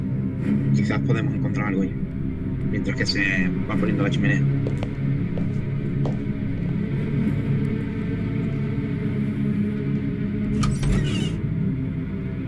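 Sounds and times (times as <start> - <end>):
steady rumbling: 0.0 - 12.4
speech: 0.7 - 2.1, 2.7 - 5.0, 6.0 - 6.3
side door of a mansion creaking open: 10.5 - 11.4.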